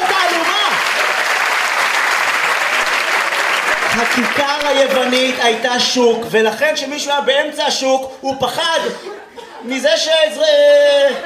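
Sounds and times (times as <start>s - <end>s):
audience applause: 0.0s - 5.7s
speech: 4.0s - 11.2s
laughter: 8.8s - 11.2s.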